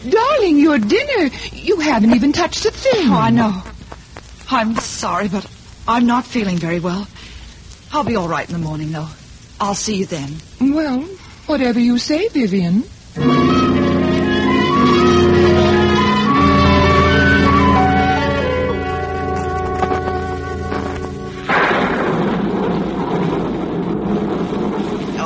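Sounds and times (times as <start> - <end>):
speech: 0.0 - 3.7, 4.5 - 7.2, 7.9 - 13.5
sustained droning tones: 13.2 - 25.1
rumbling thunder in a thunderstorm: 13.2 - 25.2.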